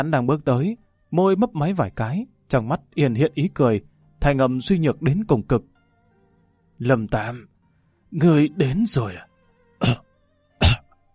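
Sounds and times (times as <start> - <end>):
speech: 0.0 - 5.7, 6.8 - 7.5, 8.1 - 10.0
frail old man dry rasping coughs: 9.8 - 10.0, 10.6 - 11.0.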